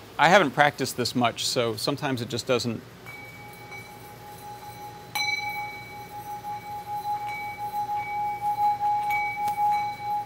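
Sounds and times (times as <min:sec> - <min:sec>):
speech: 0:00.2 - 0:03.0
bowl ringing when struck by a solenoid: 0:03.0 - 0:10.2.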